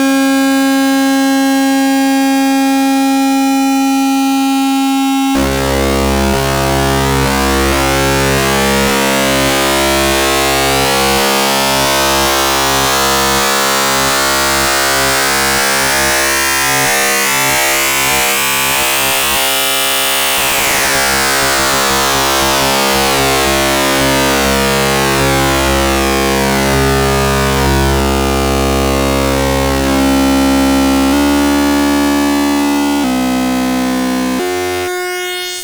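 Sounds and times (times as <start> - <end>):
sine wave FM synth sweep: 0.1 - 35.6.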